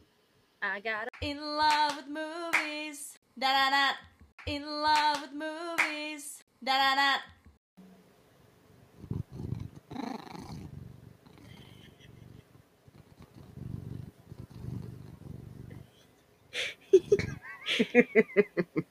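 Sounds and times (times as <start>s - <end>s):
speech: 0.6s - 7.4s, 17.8s - 18.8s
domestic cat purring while being petted: 9.0s - 16.0s
laughter: 16.8s - 18.8s.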